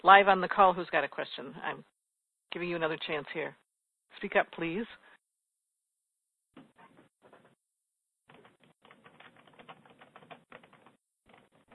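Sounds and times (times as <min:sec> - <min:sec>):
speech: 0:00.0 - 0:05.1
rapid keyboard typing: 0:08.3 - 0:11.7.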